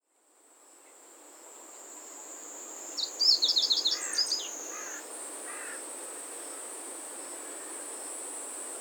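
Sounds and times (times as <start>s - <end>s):
steady high insect drone: 0.6s - 8.8s
meadow bunting song: 2.9s - 5.0s.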